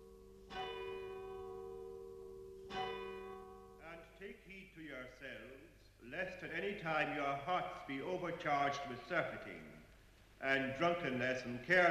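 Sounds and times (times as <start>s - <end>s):
church tower bell tolling: 0.0s - 4.2s
speech: 4.2s - 9.8s, 10.4s - 11.8s.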